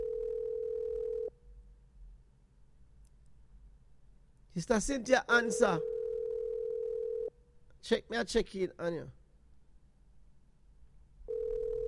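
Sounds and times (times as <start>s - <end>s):
electronic phone tone of an outgoing call ringing: 0.0s - 1.3s, 5.6s - 7.3s, 11.3s - 11.8s
faint hum: 0.0s - 11.8s
speech: 4.6s - 5.9s, 7.8s - 9.2s.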